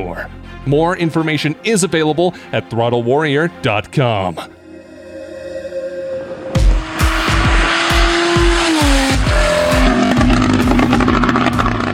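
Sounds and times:
speech: 0.0 - 4.6
sharp burst of Porsche 911 Turbo custom exhaust noise: 4.7 - 11.1
Porsche 911 Turbo sports car with custom exhaust revving hard: 6.6 - 11.9.

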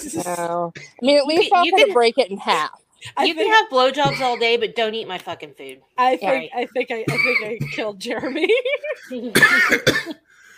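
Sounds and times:
speech: 0.0 - 10.2
harsh raspy coughing fit: 7.1 - 8.5, 9.1 - 10.3
brief wheezy breath: 10.2 - 10.5.

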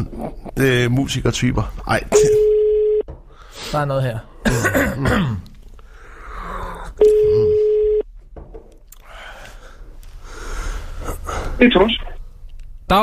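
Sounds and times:
speech: 0.0 - 2.5, 3.7 - 5.5, 11.6 - 12.1
coughs at the microphone: 2.1 - 2.4, 4.4 - 5.5
ringback tone over a phone line: 2.4 - 3.0, 7.0 - 8.0
soft breaths at the microphone: 3.2 - 3.8, 5.8 - 7.0, 9.0 - 11.6.

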